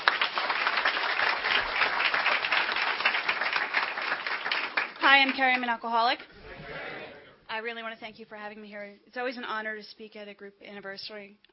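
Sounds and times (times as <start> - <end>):
roomful of people applauding: 0.0 - 5.6
speech: 5.1 - 6.8, 7.6 - 11.5.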